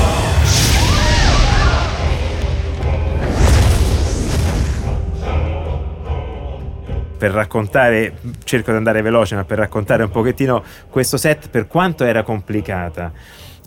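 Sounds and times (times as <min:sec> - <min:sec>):
staged explosions booming at a large show: 0:00.0 - 0:05.1
speech: 0:07.2 - 0:13.6.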